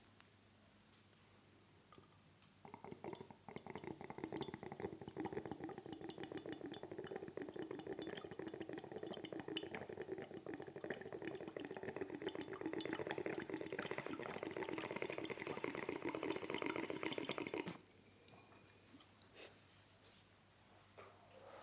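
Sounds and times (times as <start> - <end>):
water pipe: 1.9 - 17.8.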